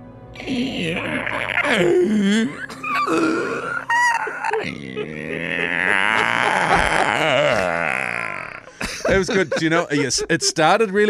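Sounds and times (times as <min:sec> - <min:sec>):
speech: 0:00.4 - 0:03.8, 0:09.1 - 0:11.0
man's voice imitating a zombie monster's growl: 0:00.4 - 0:08.8
laughter: 0:01.0 - 0:11.0.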